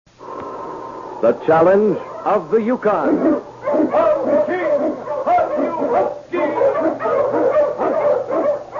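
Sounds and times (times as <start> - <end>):
speech: 1.2 - 4.4
pack of Eskimo sled dogs barking and yelping: 1.9 - 8.7.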